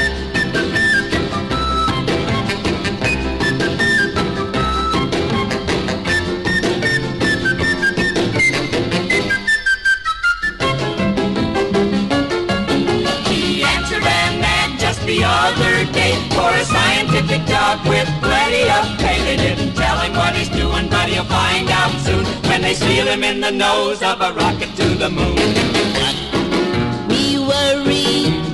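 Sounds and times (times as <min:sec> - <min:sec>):
shrill whistling through a tooth gap carrying a bright melody: 0:00.0 - 0:11.0
full loud rock and roll band playing: 0:00.0 - 0:28.5.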